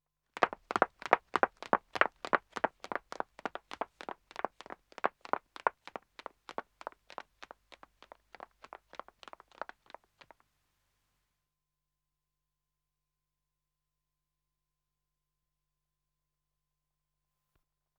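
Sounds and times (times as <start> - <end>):
footsteps of two women running on dead acoustic wood: 0.4 - 10.4.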